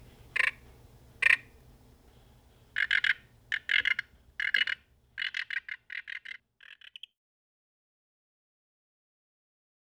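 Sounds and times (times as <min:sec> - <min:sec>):
faint low hum: 0:00.0 - 0:05.2
Sauter's frog clucking and clicking pulsed notes: 0:00.4 - 0:00.6, 0:01.2 - 0:01.6, 0:02.8 - 0:07.1.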